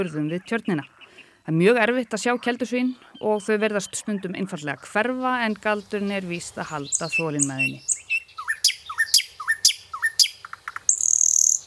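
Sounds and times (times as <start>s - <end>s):
speech: 0.0s - 7.9s
common nightingale singing: 0.0s - 11.6s.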